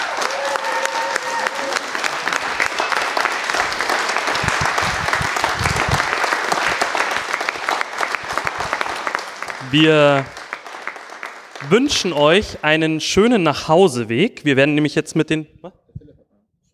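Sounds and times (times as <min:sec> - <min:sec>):
faint cheers: 0:00.0 - 0:02.8
sustained applause from a large audience: 0:00.0 - 0:13.2
speech: 0:09.7 - 0:10.4, 0:11.7 - 0:15.8.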